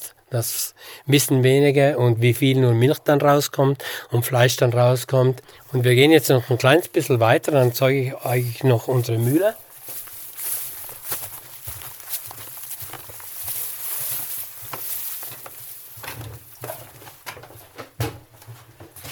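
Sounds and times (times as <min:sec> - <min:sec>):
speech: 0:00.3 - 0:09.6
footsteps on wooden floorboards in a farm barn: 0:06.8 - 0:19.0.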